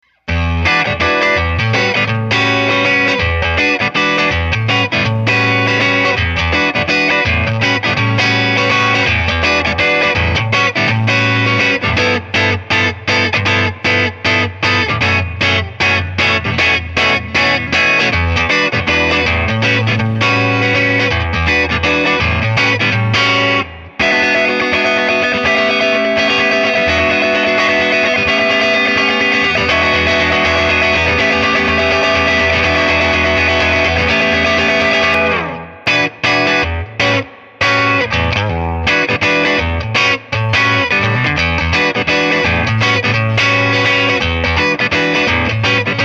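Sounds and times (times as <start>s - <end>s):
electric guitar neck pickup bright down strum: 0.0s - 46.0s.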